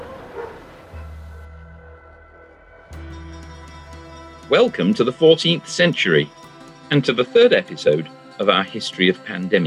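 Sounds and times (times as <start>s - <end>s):
dogs barking while chasing a cart along a street: 0.0s - 1.5s
speech: 4.5s - 9.6s.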